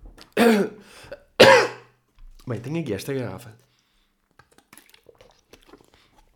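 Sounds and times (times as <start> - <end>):
person coughing after choking on water: 0.4 - 0.8, 1.4 - 1.9
speech: 0.4 - 0.8, 2.5 - 3.7.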